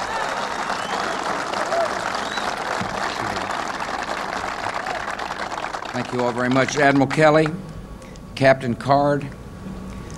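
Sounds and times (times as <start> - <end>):
large crowd of sailors applauding aboard a Navy aircraft carrier: 0.0 - 7.6
speech: 6.0 - 7.7, 8.4 - 9.4.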